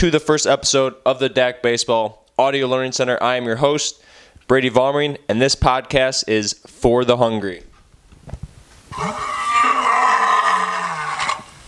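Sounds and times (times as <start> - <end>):
speech: 0.0 - 7.7, 9.0 - 9.4
lion roaring: 8.9 - 11.6.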